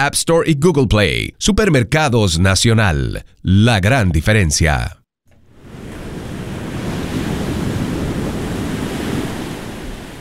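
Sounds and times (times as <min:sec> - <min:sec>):
speech: 0:00.0 - 0:05.0
ocean waves breaking on shore: 0:05.4 - 0:10.1
wind rushing across the microphone: 0:05.5 - 0:10.1.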